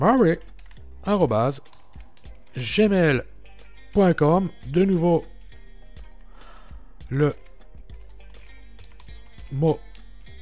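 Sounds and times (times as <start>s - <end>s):
speech: 0.0s - 1.8s, 2.6s - 3.3s, 3.9s - 5.3s, 7.1s - 7.4s, 9.5s - 9.9s
typing on a computer keyboard: 0.4s - 0.9s, 1.6s - 2.5s, 7.4s - 10.0s.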